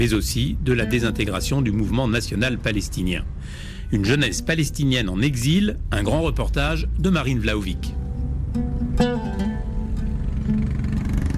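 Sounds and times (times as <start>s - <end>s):
speech: 0.0s - 9.1s
car driving at high speed along a road: 9.8s - 11.3s.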